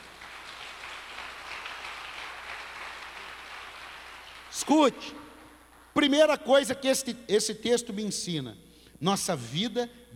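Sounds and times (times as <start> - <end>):
audience applauding: 0.0 - 4.6
speech: 4.6 - 5.2, 6.0 - 10.1.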